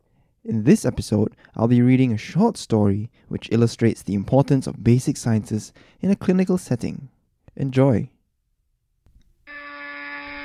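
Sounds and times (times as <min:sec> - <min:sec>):
speech: 0:00.4 - 0:08.1
loud harsh buzzer droning: 0:09.5 - 0:10.4.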